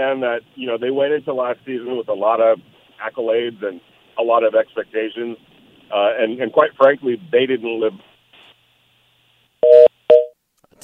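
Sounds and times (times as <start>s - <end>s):
speech: 0.0s - 8.1s
telephone line electronic beeps after a disconnected call: 9.6s - 10.4s.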